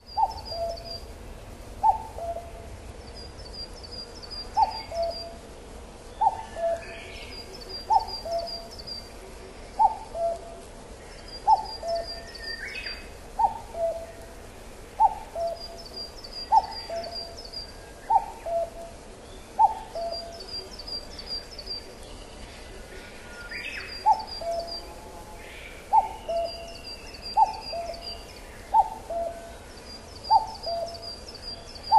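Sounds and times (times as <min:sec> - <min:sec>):
common cuckoo: 0:00.0 - 0:01.1, 0:01.8 - 0:05.5, 0:06.1 - 0:31.9.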